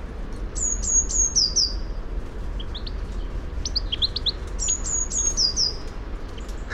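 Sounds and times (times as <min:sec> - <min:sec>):
low background rumble: 0:00.0 - 0:06.7
Eurasian blue tit Cyanistes caeruleus calling: 0:00.6 - 0:02.0, 0:03.6 - 0:06.7.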